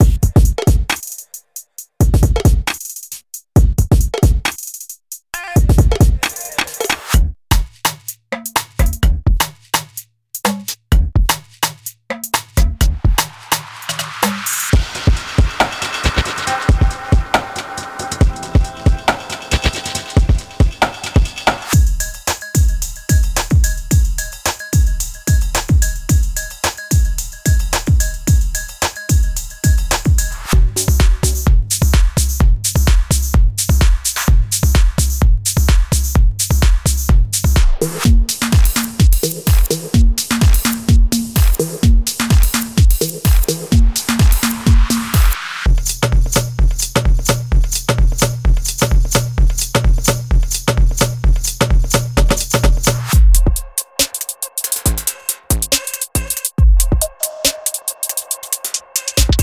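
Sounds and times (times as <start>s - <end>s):
drum loops: 0.0s - 59.4s.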